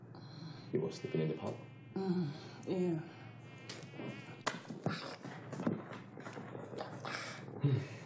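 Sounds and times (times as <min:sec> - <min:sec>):
thin whining insect buzzing: 0:00.2 - 0:05.6
speech: 0:00.7 - 0:03.2.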